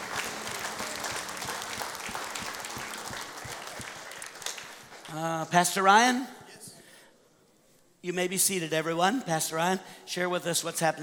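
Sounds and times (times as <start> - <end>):
audience applauding with dense hand clapping: 0.0 - 5.2
speech: 5.2 - 6.4, 8.0 - 11.0.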